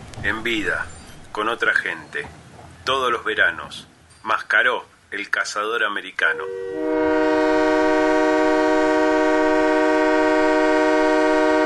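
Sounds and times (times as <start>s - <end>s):
speech: 0.2s - 7.2s
locomotive horn: 6.2s - 11.6s.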